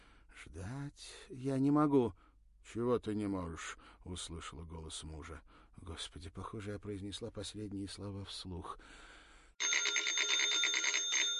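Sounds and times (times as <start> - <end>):
speech: 0.5 - 9.8
telephone ringing with a metallic bell trill: 9.6 - 11.3.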